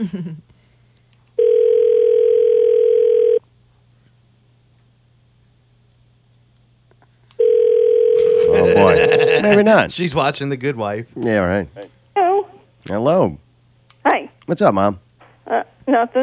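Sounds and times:
speech: 0:00.0 - 0:00.5, 0:08.7 - 0:12.0, 0:12.8 - 0:13.4, 0:14.0 - 0:16.2
faint low hum: 0:00.0 - 0:16.2
steady two-second phone ringback tone: 0:01.4 - 0:03.4, 0:07.4 - 0:09.2
laughter: 0:08.2 - 0:09.9.

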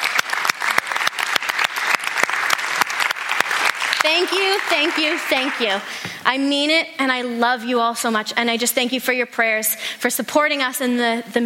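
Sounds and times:
audience applause: 0:00.0 - 0:05.9
speech: 0:04.0 - 0:11.4.

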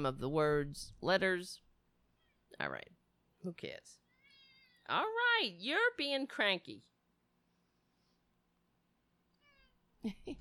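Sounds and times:
speech: 0:00.0 - 0:01.6, 0:02.5 - 0:04.0, 0:04.9 - 0:06.9, 0:10.0 - 0:10.3
cat meowing: 0:04.1 - 0:05.0, 0:09.4 - 0:09.8.

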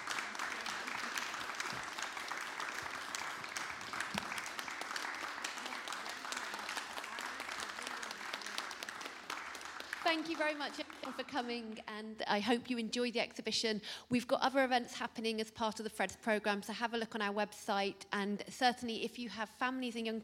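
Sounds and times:
audience applause: 0:00.0 - 0:11.4
speech: 0:10.1 - 0:20.2.

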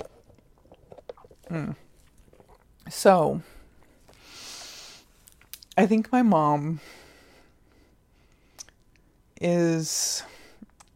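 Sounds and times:
slurping gulp of boba tea: 0:00.0 - 0:02.7
wet mouth clicks and smacks from chewing boba: 0:00.0 - 0:02.8, 0:05.3 - 0:05.8, 0:08.5 - 0:09.0, 0:10.7 - 0:10.9
speech: 0:01.5 - 0:01.9, 0:02.9 - 0:03.6, 0:05.8 - 0:07.0, 0:09.4 - 0:10.3.

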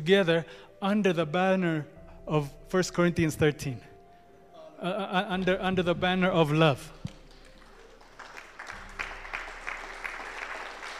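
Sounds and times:
speech: 0:00.0 - 0:03.9, 0:04.8 - 0:07.1
polite audience applause: 0:07.2 - 0:10.9.

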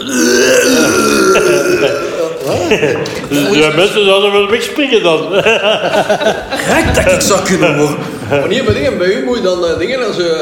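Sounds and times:
throaty retching and gurgling vomiting sound effect: 0:00.0 - 0:02.9
laughter: 0:01.1 - 0:08.7
speech: 0:02.7 - 0:10.4.

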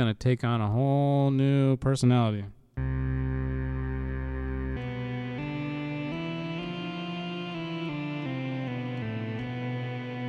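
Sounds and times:
speech: 0:00.0 - 0:02.6
sustained synthesizer tone with reverb: 0:02.8 - 0:10.2.

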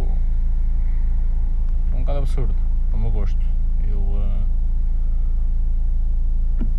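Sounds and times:
car engine idling or cruising: 0:00.0 - 0:06.7
speech: 0:02.2 - 0:04.6.

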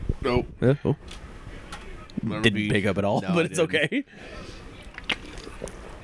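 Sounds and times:
speech: 0:00.2 - 0:01.2, 0:02.2 - 0:04.6
two people slurping and sipping energy drinks: 0:04.2 - 0:06.0
wet gulp: 0:04.8 - 0:05.9.

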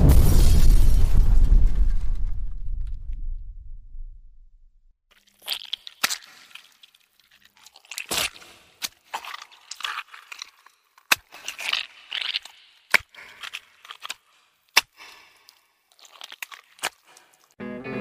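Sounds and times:
loud reverberating rumble swelling into a booming explosion: 0:00.0 - 0:04.7
wet cracks and splattering crunches: 0:05.1 - 0:17.6.

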